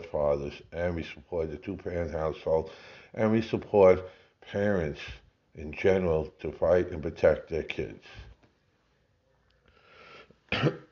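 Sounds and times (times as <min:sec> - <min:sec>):
speech: 0:00.1 - 0:08.3, 0:10.5 - 0:10.8
soft breathy inhale: 0:02.7 - 0:03.2, 0:09.7 - 0:10.4
loud harsh cough: 0:10.5 - 0:10.9.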